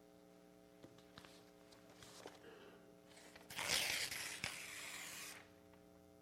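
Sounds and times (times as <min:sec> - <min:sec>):
faint steady hum: 0:00.0 - 0:06.1
sheet of paper ripped apart: 0:03.2 - 0:05.5.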